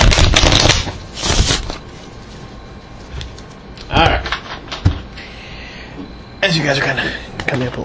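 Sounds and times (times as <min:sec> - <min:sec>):
playing cards being shuffled: 0:00.0 - 0:01.8
speech: 0:06.6 - 0:07.8.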